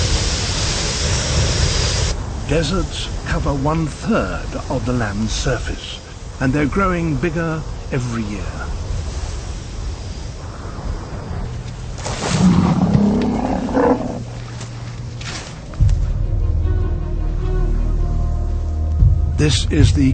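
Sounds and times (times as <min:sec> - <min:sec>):
outdoor wind in the Kalahari Desert: 0:00.0 - 0:20.1
speech: 0:02.5 - 0:08.8, 0:19.4 - 0:20.1
elephants roaring in the Kalahari Desert of southern Africa: 0:12.2 - 0:14.6.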